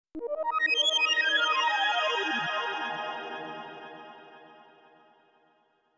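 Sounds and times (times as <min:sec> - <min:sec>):
synthesizer input: 0:00.2 - 0:04.9.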